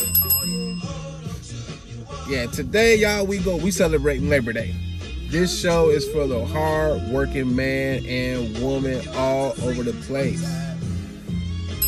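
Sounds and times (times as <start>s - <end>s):
small bell dinging: 0.0s - 1.3s
speech: 2.3s - 10.6s.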